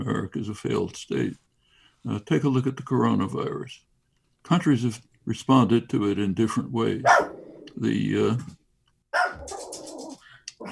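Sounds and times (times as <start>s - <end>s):
speech: 0.0s - 1.4s, 2.0s - 7.2s, 7.8s - 8.6s
dog barking: 7.0s - 7.6s, 9.1s - 10.1s.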